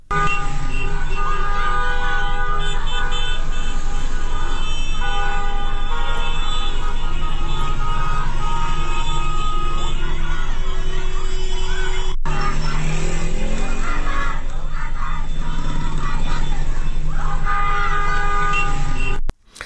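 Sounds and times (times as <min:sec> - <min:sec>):
car horns honking on a busy street: 0:00.0 - 0:19.3
traffic noise on a busy street: 0:00.0 - 0:19.6
crowd of young voices chanting protest slogans on a busy street: 0:00.1 - 0:19.2
laughter: 0:00.2 - 0:19.0.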